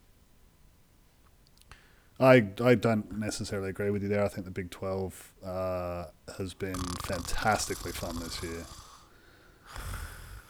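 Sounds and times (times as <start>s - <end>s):
speech: 2.2s - 8.8s
person imitating a snore: 6.6s - 9.1s, 9.7s - 10.4s.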